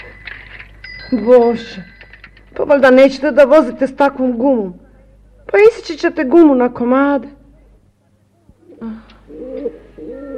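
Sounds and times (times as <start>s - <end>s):
speech: 1.1s - 1.9s, 2.6s - 4.8s, 5.5s - 7.4s
doves cooing: 8.6s - 10.3s.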